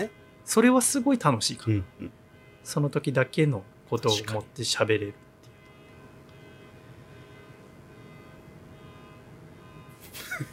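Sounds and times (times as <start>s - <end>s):
speech: 0.0s - 5.3s
car horn blast from outside: 1.8s - 2.8s, 5.5s - 10.5s.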